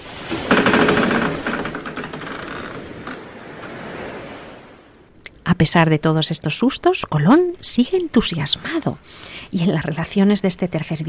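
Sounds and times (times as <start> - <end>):
large ocean wave crashing: 0.0 - 5.1
speech: 5.5 - 11.0.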